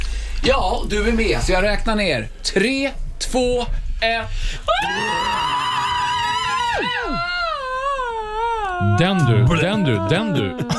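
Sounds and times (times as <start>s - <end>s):
speech: 0.4s - 5.6s, 6.8s - 7.4s, 8.8s - 10.7s
power metal-style high-pitched scream with vibrato: 4.7s - 10.4s.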